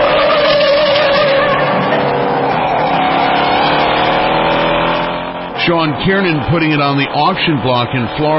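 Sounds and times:
Mustang car engine roaring and revving in a movie chase scene: 0.0 - 8.3
tires squealing: 0.0 - 8.3
speech: 5.7 - 8.3.

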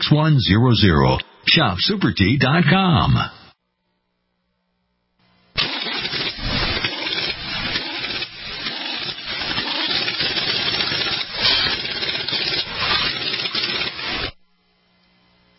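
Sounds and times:
speech: 0.1 - 3.4
pink Cadillac car engine starting and idling: 5.6 - 14.3.

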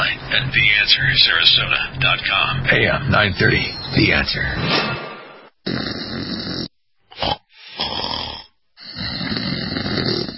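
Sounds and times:
speech: 0.3 - 5.0
loud snoring: 5.6 - 10.3.

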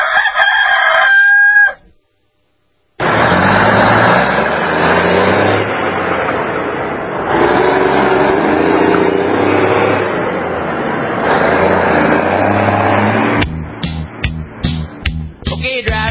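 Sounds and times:
rooster crowing: 0.0 - 2.0
steady dense rushing roar: 3.0 - 16.0.

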